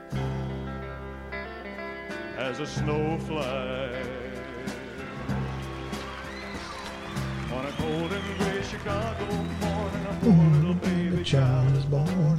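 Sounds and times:
instrumental backing: 0.0s - 12.3s
recorded pop song: 1.8s - 12.3s
person singing a smooth flowing melody: 2.3s - 5.3s, 7.4s - 12.3s
speech: 2.4s - 4.2s, 7.6s - 12.3s.

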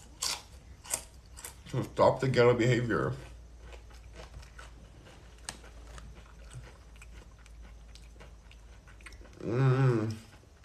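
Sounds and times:
person chewing a crunchy chip: 0.0s - 2.0s, 2.7s - 10.6s
speech: 1.7s - 3.3s
short louder voiced hum: 9.4s - 10.3s.

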